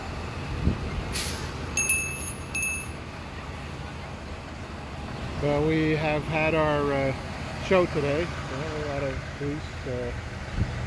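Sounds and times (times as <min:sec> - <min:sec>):
city bus low engine rumble in traffic: 0:00.0 - 0:10.8
city bus air brakes hissing in traffic: 0:01.1 - 0:01.6
speech: 0:05.4 - 0:10.7.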